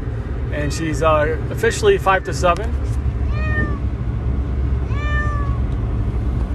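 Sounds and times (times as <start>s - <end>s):
steady low rumble of noise: 0.0s - 6.5s
speech: 0.6s - 3.0s
cat meowing in a carrier: 3.2s - 4.0s, 4.8s - 5.8s.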